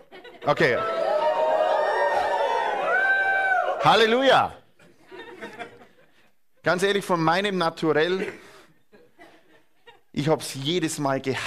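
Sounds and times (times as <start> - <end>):
laughter: 0.0 - 1.0, 4.8 - 6.4, 8.1 - 10.2
speech: 0.4 - 1.0, 3.8 - 4.6, 6.6 - 8.4, 10.2 - 11.4
large crowd cheering and shouting jubilantly: 0.5 - 4.4.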